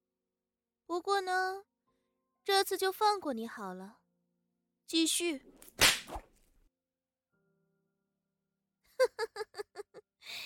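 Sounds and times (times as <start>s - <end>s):
speech: 0.9s - 1.7s, 2.4s - 4.0s, 4.9s - 6.2s
sharp whip crack lashing against a body: 5.7s - 6.3s
brief swish: 5.8s - 6.3s
laughter: 9.0s - 10.0s.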